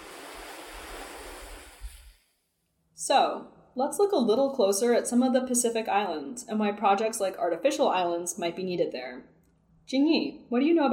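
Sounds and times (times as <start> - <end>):
ocean waves crashing on shore: 0.0 - 2.2
speech: 3.0 - 9.3, 9.9 - 10.9.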